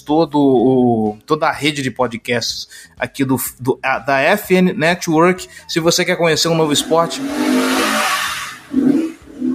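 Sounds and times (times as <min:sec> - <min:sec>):
speech: 0:00.0 - 0:07.8
loud racing motorcycle engines roaring: 0:06.3 - 0:09.5.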